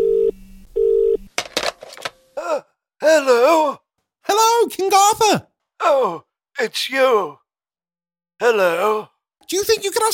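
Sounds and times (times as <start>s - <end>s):
telephone ringing tone: 0.0s - 1.3s
handset rustling and clattering: 1.3s - 2.2s
speech: 3.0s - 7.4s, 8.4s - 10.1s.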